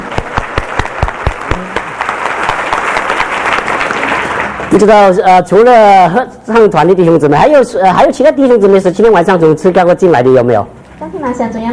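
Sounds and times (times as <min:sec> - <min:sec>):
large audience applause: 0:00.0 - 0:05.1
speech: 0:04.8 - 0:11.7.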